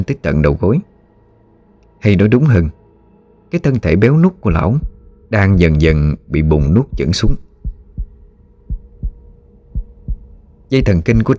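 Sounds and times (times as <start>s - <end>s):
speech: 0.0s - 0.9s, 2.0s - 2.8s, 3.5s - 7.4s, 10.7s - 11.3s
faint hum: 0.0s - 11.3s
fast heartbeat thumping: 6.6s - 11.0s.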